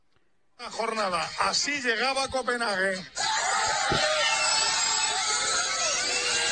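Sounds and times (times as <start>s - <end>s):
speech: 0.6s - 3.3s
dense loud crowd roaring with high-pitched screams and cheers: 3.2s - 6.5s.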